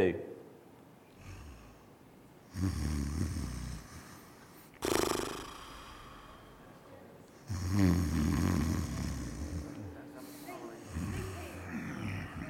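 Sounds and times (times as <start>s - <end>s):
person snoring while asleep: 2.5s - 4.2s, 4.8s - 6.6s, 7.4s - 9.9s, 10.8s - 12.4s.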